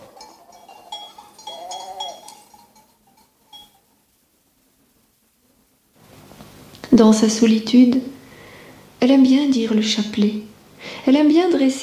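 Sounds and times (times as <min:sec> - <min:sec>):
sheep bleating: 0:00.0 - 0:02.7
faint rustle: 0:00.0 - 0:06.6
speech: 0:06.9 - 0:08.2, 0:09.0 - 0:11.8.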